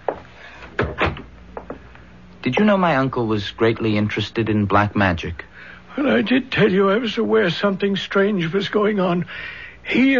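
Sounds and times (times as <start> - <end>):
library door being pushed shut: 0.8 - 1.8
speech: 2.4 - 10.1.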